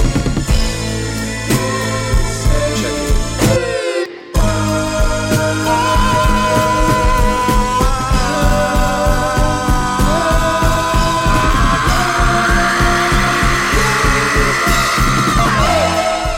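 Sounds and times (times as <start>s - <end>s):
loud heavily distorted bass with pounding low end: 0.0s - 3.8s, 4.4s - 16.3s
long drawn-out sung scream: 5.5s - 16.3s.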